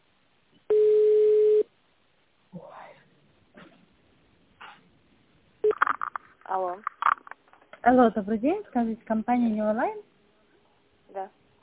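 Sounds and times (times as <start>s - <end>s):
phone line ringback tone while a call is transferred to an internal extension: 0.7s - 1.6s
speech: 6.5s - 7.0s, 7.8s - 10.1s, 11.2s - 11.4s.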